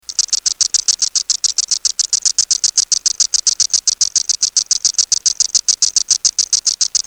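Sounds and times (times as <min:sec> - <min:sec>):
Cassini periodical cicada song in Michigan: 0:00.0 - 0:07.0.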